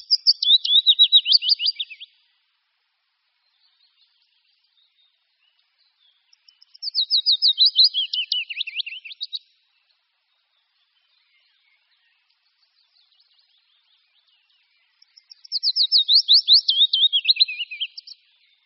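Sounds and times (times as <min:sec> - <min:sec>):
willow warbler singing: 0:00.0 - 0:18.6.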